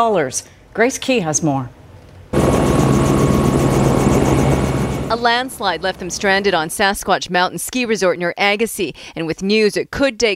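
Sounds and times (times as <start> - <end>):
speech: 0.0 - 1.8, 5.1 - 10.3
helicopter flying guests off Sasquatch Mountain Ski Resort near Agassiz: 2.4 - 7.0.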